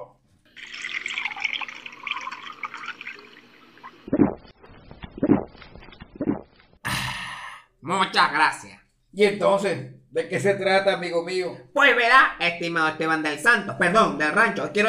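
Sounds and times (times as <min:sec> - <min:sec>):
water pouring into a glass: 0:00.5 - 0:04.4
speech: 0:07.9 - 0:14.8.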